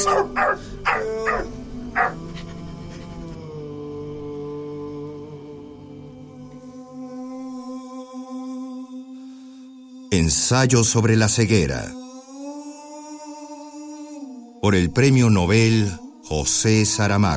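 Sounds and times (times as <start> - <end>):
dog barking: 0.0 - 2.2
speech: 0.0 - 2.2, 10.2 - 12.0, 14.6 - 17.3.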